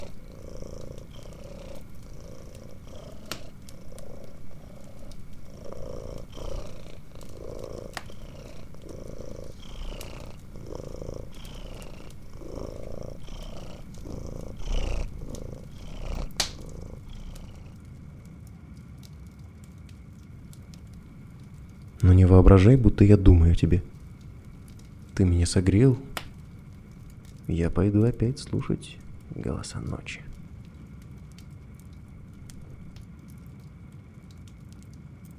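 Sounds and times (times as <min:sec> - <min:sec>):
cat purring in a steady rumbling rhythm: 0:00.0 - 0:30.5
speech: 0:22.1 - 0:24.0, 0:25.2 - 0:26.1, 0:27.5 - 0:30.4.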